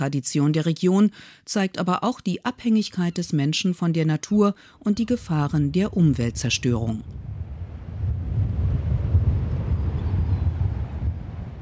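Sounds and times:
speech: 0.0s - 7.3s
strong wind on the beach at low tide buffeting the microphone: 5.0s - 11.5s.

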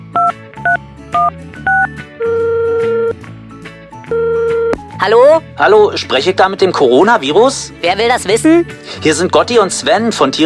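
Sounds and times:
phone touch-tone dialing beeps: 0.2s - 3.1s
phone ringing tone: 0.2s - 3.2s, 4.1s - 4.8s
speech: 5.0s - 10.4s.

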